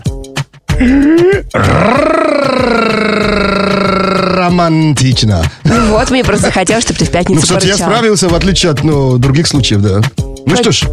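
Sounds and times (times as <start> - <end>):
speech: 0.8 - 2.0, 4.6 - 10.9
voice imitating a growl with a rolled R trill: 0.8 - 4.6.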